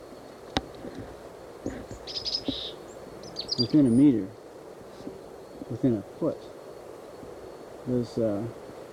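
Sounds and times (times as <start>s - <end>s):
wind blowing: 0.0s - 8.9s
chickadees exchanging type 1 calls while foraging in a pine thicket: 1.4s - 8.2s
speech: 3.6s - 4.4s, 5.7s - 6.5s, 7.9s - 8.6s.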